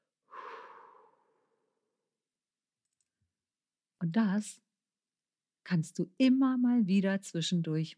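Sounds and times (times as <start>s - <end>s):
slow breathy exhale through the mouth: 0.3s - 1.4s
speech: 4.0s - 4.6s, 5.6s - 7.9s.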